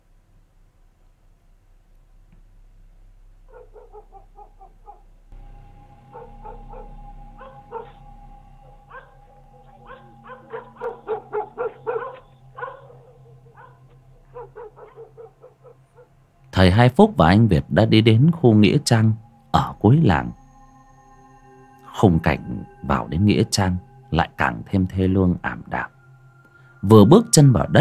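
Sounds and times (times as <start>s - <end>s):
dogs barking at night on a dark village road: 3.5s - 5.0s, 6.0s - 16.2s
speech: 16.6s - 19.2s, 19.8s - 20.4s, 22.0s - 25.9s, 26.8s - 27.7s.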